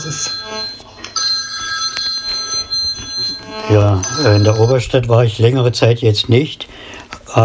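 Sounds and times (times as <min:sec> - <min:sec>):
speech: 0:00.0 - 0:00.8, 0:03.5 - 0:07.4
mobile phone ringing with bright electronic ringtone: 0:00.0 - 0:05.0.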